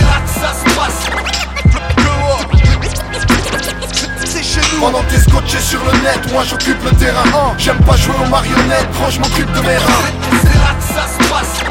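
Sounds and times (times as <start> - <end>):
loud hip hop beat with steady bass: 0.0 - 11.6
rapid turntable scratching by a DJ: 0.0 - 11.6
speech: 6.3 - 11.6.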